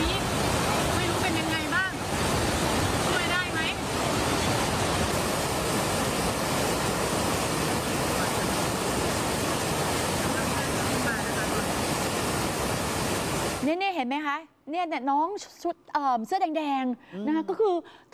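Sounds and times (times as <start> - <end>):
rushing waterfall with very strong current during heavy rainy-season rain in Thailand: 0.0 - 13.7
speech: 14.7 - 18.1.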